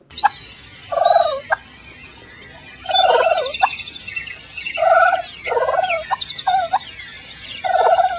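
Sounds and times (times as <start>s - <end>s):
faint higher bird chirps: 0.1s - 8.1s
turkey gobbling and purring: 0.2s - 1.7s, 2.8s - 3.8s, 4.8s - 7.0s, 7.6s - 8.1s.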